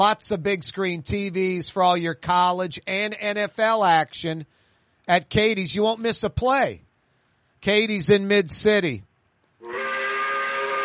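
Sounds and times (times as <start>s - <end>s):
speech: 0.0s - 6.9s, 7.6s - 9.1s
five o'clock steam whistle blowing: 9.6s - 10.8s.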